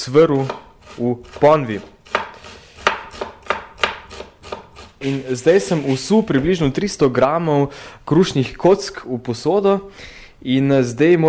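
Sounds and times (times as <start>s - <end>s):
speech: 0.0s - 2.0s, 5.0s - 11.2s
knife finely chopping onion on a board: 2.0s - 4.9s.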